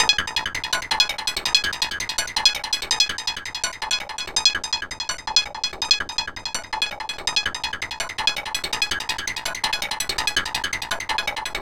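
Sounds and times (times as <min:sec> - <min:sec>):
synth arpeggios: 0:00.0 - 0:11.6.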